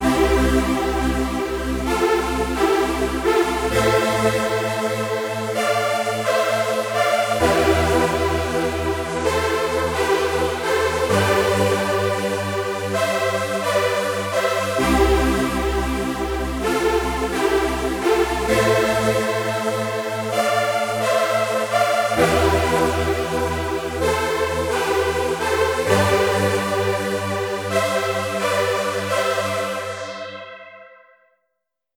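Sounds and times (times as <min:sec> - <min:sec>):
analogue strings: 0:00.0 - 0:31.0.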